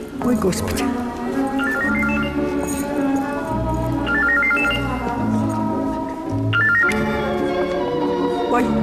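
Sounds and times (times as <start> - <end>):
steady background of lower tones: 0.0 - 8.8
telephone ringing with a melodic electronic ringtone: 1.6 - 2.7, 4.0 - 5.1, 6.5 - 7.1.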